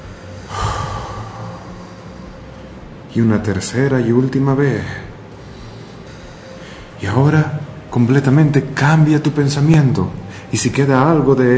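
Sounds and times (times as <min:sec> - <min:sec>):
deep breath drawn in and let out through the mouth: 0:00.0 - 0:03.1, 0:05.3 - 0:07.0, 0:10.2 - 0:10.5
speech: 0:03.1 - 0:05.1, 0:07.0 - 0:11.5.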